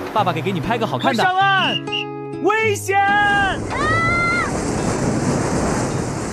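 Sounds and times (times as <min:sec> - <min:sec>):
ocean waves washing in as the tide rises along the shore: 0:00.0 - 0:01.1, 0:03.1 - 0:06.3
speech: 0:00.2 - 0:04.2.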